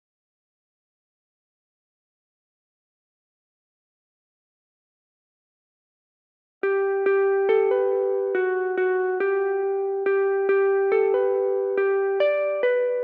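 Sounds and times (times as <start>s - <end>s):
nostalgic E minor lead guitar melody loop: 6.7s - 13.0s.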